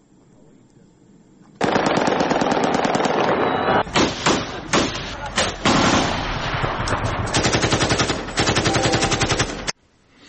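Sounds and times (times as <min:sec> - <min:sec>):
celebratory automatic gunfire into the air after a cricket victory: 0:01.6 - 0:09.7.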